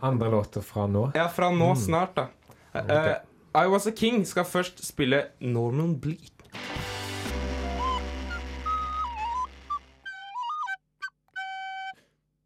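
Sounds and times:
speech: 0.0 - 6.4
low droning musical background: 6.6 - 10.0
flute playing a short wavering melody: 6.6 - 12.1.

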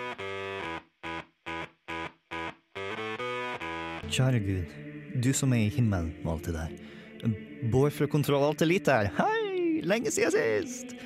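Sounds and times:
heavily distorted electric guitar music in choppy rhythmic chords: 0.0 - 4.8
speech: 4.1 - 11.0.

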